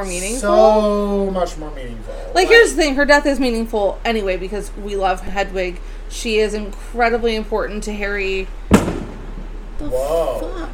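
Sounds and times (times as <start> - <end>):
speech: 0.0 - 8.6, 9.8 - 10.7
low hum: 0.0 - 10.7
fireworks boom outside: 8.6 - 9.9.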